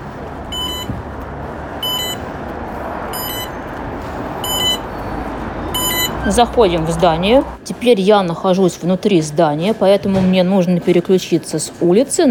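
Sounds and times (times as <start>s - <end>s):
steady outdoor street noise: 0.0s - 12.2s
short high electronic beep bursts from a sound beacon above a building door: 0.5s - 0.9s, 1.8s - 2.2s, 3.1s - 3.6s, 4.4s - 4.9s, 5.7s - 6.5s
speech: 6.3s - 12.2s.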